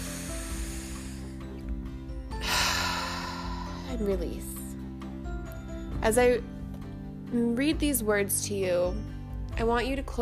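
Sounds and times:
deep breath drawn in during a guided meditation: 0:00.0 - 0:01.5, 0:02.3 - 0:04.0
quiet sustained music: 0:00.0 - 0:10.2
speech: 0:03.9 - 0:04.6, 0:06.0 - 0:06.5, 0:07.3 - 0:10.2.

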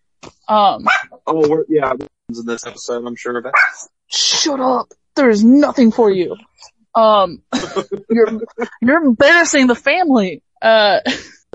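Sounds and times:
speech: 0:00.5 - 0:11.5
dogs barking: 0:00.8 - 0:01.2, 0:03.5 - 0:03.8
laughter: 0:01.3 - 0:03.5, 0:07.5 - 0:08.9, 0:11.0 - 0:11.5.

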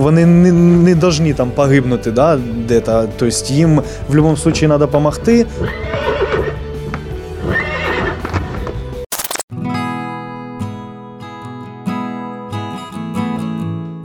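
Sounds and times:
speech: 0:00.0 - 0:06.1
horse neighing: 0:05.6 - 0:06.6, 0:07.4 - 0:08.4
sharp burst of noise: 0:09.1 - 0:09.5.

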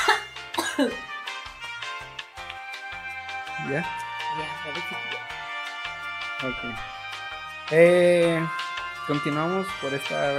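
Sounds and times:
person coughing harshly: 0:00.0 - 0:01.1
music with pulsing low bass: 0:00.0 - 0:10.3
speech: 0:00.8 - 0:01.1, 0:03.6 - 0:05.3, 0:06.4 - 0:07.0, 0:07.7 - 0:10.3.

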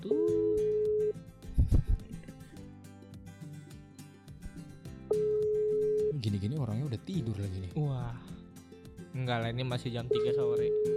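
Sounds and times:
telephone ringback tone of an outgoing call: 0:00.1 - 0:01.1, 0:05.1 - 0:06.2, 0:10.2 - 0:10.9
speech: 0:06.9 - 0:08.4, 0:09.2 - 0:10.9.

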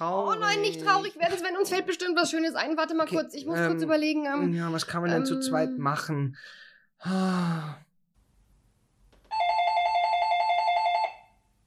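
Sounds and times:
speech: 0:00.0 - 0:07.8
sigh-like vocal sound: 0:04.5 - 0:06.0, 0:07.0 - 0:07.9
electronic doorbell ringing: 0:09.3 - 0:11.3.

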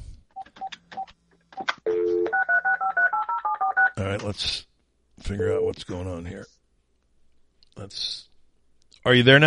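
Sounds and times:
landline telephone dial tone: 0:01.9 - 0:03.8
speech: 0:04.0 - 0:06.6, 0:07.8 - 0:08.3, 0:09.0 - 0:09.4.

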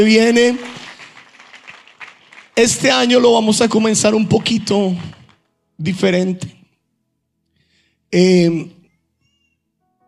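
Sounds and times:
speech: 0:00.0 - 0:00.7, 0:02.6 - 0:05.2, 0:05.8 - 0:06.6, 0:08.1 - 0:08.8
crowd applauding: 0:00.0 - 0:05.4.

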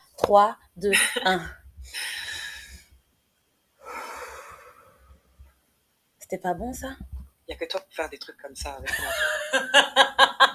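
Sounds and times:
speech: 0:00.3 - 0:02.1, 0:06.3 - 0:10.2
deep conscious breath in and long airy exhale: 0:01.9 - 0:02.9, 0:03.8 - 0:05.3.

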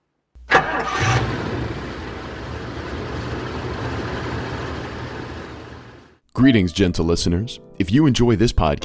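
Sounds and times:
car engine starting and idling: 0:00.4 - 0:06.2
speech: 0:06.4 - 0:08.8.

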